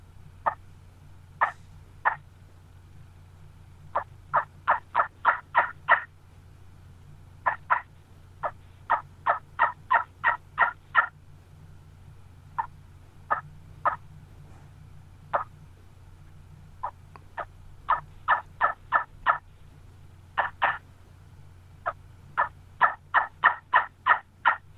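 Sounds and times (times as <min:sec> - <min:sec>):
faint low hum: 0:00.0 - 0:24.7
handmade turkey call from old gobbler bones yelping: 0:00.4 - 0:00.7, 0:01.4 - 0:02.3, 0:03.9 - 0:06.1, 0:07.4 - 0:11.2, 0:12.5 - 0:14.1, 0:15.3 - 0:15.6, 0:16.8 - 0:19.5, 0:20.3 - 0:20.9, 0:21.8 - 0:24.7.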